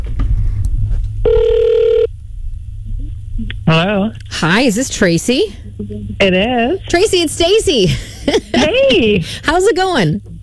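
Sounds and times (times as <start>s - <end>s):
low continuous hum: 0.0s - 10.4s
telephone ringing tone after a call is dialed: 1.2s - 2.1s
speech: 3.7s - 10.3s
laughter: 7.8s - 9.3s.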